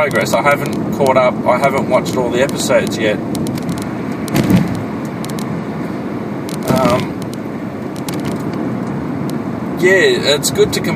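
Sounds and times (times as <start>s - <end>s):
speech: 0.0s - 3.7s, 6.8s - 7.1s, 9.8s - 10.9s
interior road rumble from a moving car: 0.0s - 10.9s
clatter bursts: 3.4s - 5.4s.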